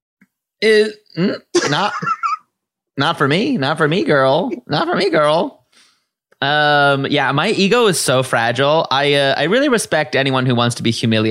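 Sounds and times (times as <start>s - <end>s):
person burping: 0.6s - 2.0s
speech: 0.6s - 2.2s, 3.0s - 5.6s, 6.4s - 11.2s.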